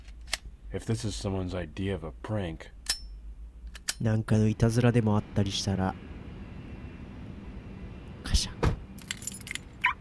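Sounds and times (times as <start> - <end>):
speech: 0.7 - 2.8, 4.0 - 6.1
keys jangling: 9.0 - 9.9.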